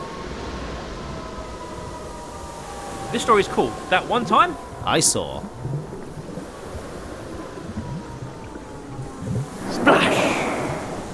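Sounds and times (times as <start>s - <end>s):
waves washing in at a seafront: 0.0s - 11.1s
wave breaking into a broad hissing rush: 2.7s - 11.1s
speech: 3.1s - 5.8s.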